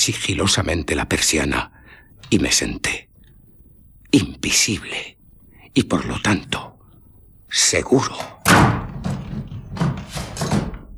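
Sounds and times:
speech: 0:00.0 - 0:03.1, 0:04.1 - 0:05.2, 0:05.8 - 0:06.8, 0:07.5 - 0:08.8
wooden door panel smashed as a door is broken in: 0:08.4 - 0:10.9.

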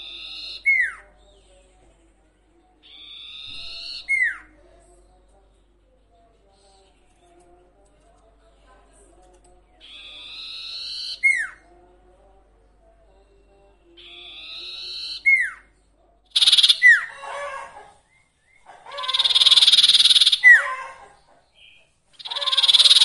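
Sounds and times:
sirtu cage bird song with buzzy rasping phrases and falling whistled slur: 0:00.0 - 0:08.1, 0:09.6 - 0:11.7, 0:13.1 - 0:23.0.

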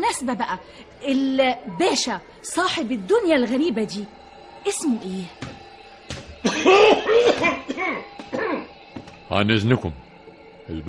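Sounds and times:
speech: 0:00.1 - 0:05.6, 0:06.6 - 0:08.7, 0:09.3 - 0:10.1, 0:10.7 - 0:10.8
man coughing: 0:06.4 - 0:08.7.

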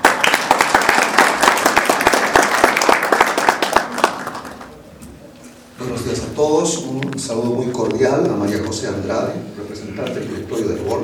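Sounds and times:
audience applause welcoming a speaker at a university event: 0:00.0 - 0:04.8
speech: 0:06.4 - 0:11.0.

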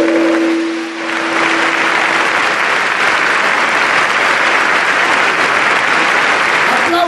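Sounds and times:
brief tone: 0:00.0 - 0:01.8
conference audience applause: 0:00.0 - 0:07.0.

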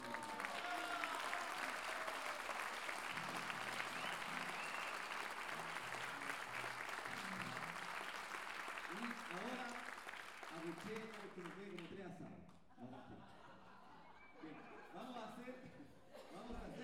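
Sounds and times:
audience applause at a folk-music gathering of improvised sung verse: 0:00.0 - 0:11.9
speech: 0:10.9 - 0:13.4
laughter: 0:12.7 - 0:16.8.

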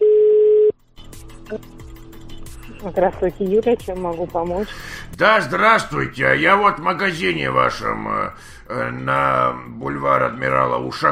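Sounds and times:
telephone keypad tone choosing option 2 in an automated supermarket customer-service menu: 0:00.0 - 0:00.7
speech: 0:01.5 - 0:01.8, 0:02.8 - 0:11.1.

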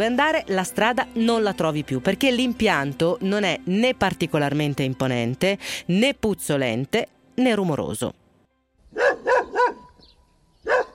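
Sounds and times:
speech: 0:00.0 - 0:08.2
dog barking outdoors beside a wood-chip plant: 0:08.9 - 0:10.0, 0:10.6 - 0:10.9.

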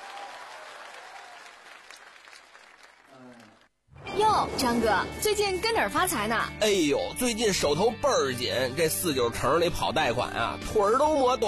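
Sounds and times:
audience applause: 0:00.0 - 0:03.7
speech: 0:04.2 - 0:11.4.

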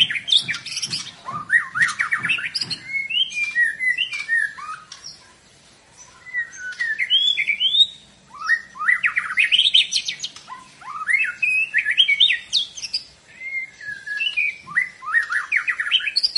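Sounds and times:
White-rumped shama singing vigorously: 0:01.2 - 0:05.0, 0:06.1 - 0:16.3.

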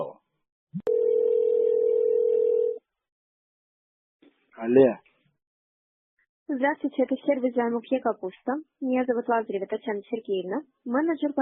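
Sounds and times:
steady mid-pitched telephone line tone before a call connects: 0:00.8 - 0:02.8
speech: 0:04.6 - 0:05.0, 0:06.5 - 0:11.4.

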